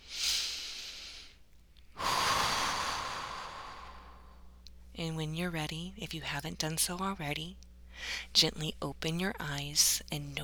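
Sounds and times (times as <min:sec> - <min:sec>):
slow deep breath: 0:00.0 - 0:01.4, 0:02.0 - 0:04.5
speech: 0:05.0 - 0:10.4.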